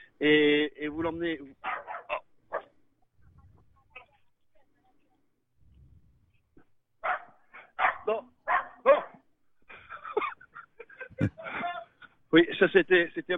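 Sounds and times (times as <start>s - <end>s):
speech: 0.2s - 1.7s, 12.4s - 13.3s
dog barking and yapping: 1.6s - 2.8s, 7.0s - 9.2s
laughter: 9.6s - 12.8s.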